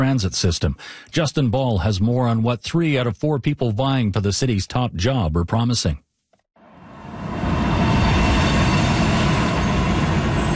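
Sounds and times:
speech: 0.0 - 6.1
thin high metallic whine: 6.6 - 10.5
light-rail train rolling wheels and motor rumbling: 6.9 - 10.5.

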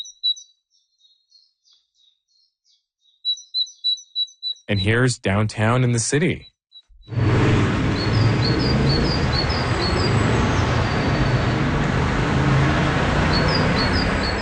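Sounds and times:
small birds singing thin high chirping phrases: 0.0 - 4.8, 7.8 - 12.2, 12.8 - 14.4
speech: 4.7 - 6.5
city traffic roar in downtown Paris France: 7.1 - 14.4.

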